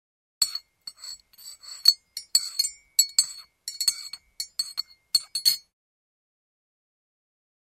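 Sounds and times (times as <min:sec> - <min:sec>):
spoon stirring coffee: 0:00.4 - 0:05.7.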